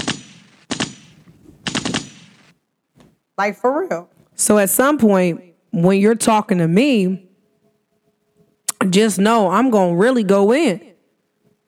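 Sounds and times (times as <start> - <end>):
loud automatic gunfire: 0.0 - 2.5
speech: 3.4 - 7.3, 8.9 - 10.9.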